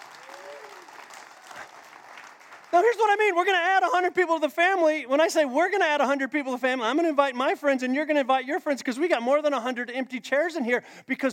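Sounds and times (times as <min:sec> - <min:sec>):
church congregation clapping sparsely: 0:00.0 - 0:04.1
speech: 0:02.7 - 0:11.3.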